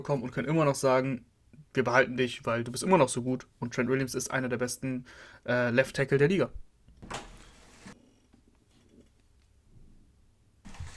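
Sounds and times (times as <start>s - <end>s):
speech: 0.0s - 7.3s
door swinging open with a noisy rush and rattle: 7.0s - 8.0s.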